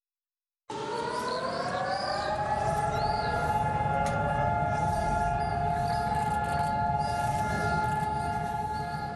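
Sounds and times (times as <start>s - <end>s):
civil-defense memorial siren wailing in Israel: 0.7s - 9.1s.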